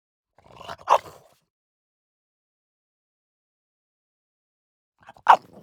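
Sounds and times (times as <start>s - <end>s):
French Bulldog barking: 0.6s - 1.2s, 5.1s - 5.5s.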